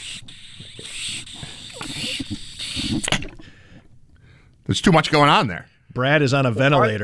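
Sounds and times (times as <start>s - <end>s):
air hissing out of a water bottle: 0.0s - 3.6s
person sipping and gulping from a water bottle: 0.3s - 3.9s
speech: 4.7s - 7.0s.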